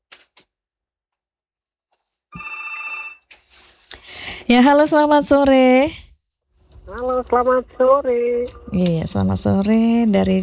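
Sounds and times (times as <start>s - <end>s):
telephone ringing from an incoming call: 2.4s - 3.3s, 6.8s - 10.4s
speech: 4.5s - 6.0s, 7.0s - 10.4s.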